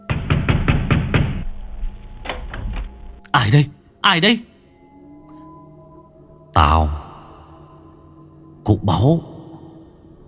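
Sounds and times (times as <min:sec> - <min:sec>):
loud banging on a door from outside: 0:00.0 - 0:02.9
speech: 0:03.4 - 0:04.5, 0:06.6 - 0:07.0, 0:08.7 - 0:09.3.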